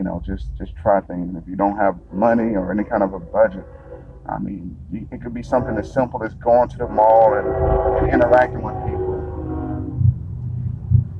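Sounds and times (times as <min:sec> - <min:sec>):
speech: 0:00.0 - 0:09.0
train rolling past heard from inside a car: 0:00.1 - 0:11.1
brief tonal hum: 0:01.8 - 0:10.2.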